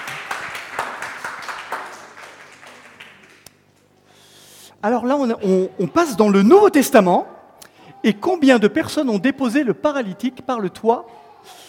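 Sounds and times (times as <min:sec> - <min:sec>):
audience applause: 0:00.0 - 0:03.5
speech: 0:04.8 - 0:07.3, 0:08.0 - 0:11.6.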